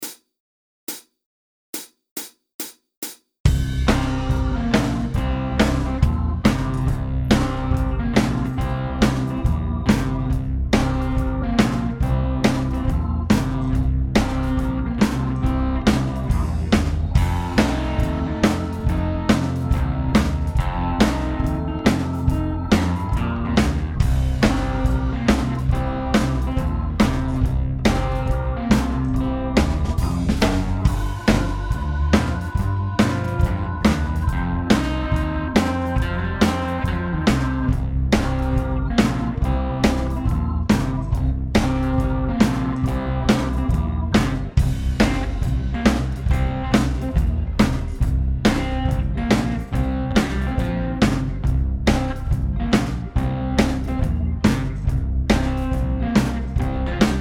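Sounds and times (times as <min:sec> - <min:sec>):
southern rock blues backing track: 0:03.5 - 0:57.1.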